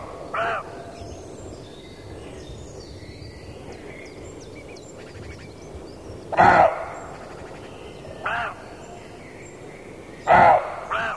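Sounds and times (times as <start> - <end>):
Male roe deer barking: 6.4 - 7.1, 10.3 - 11.1.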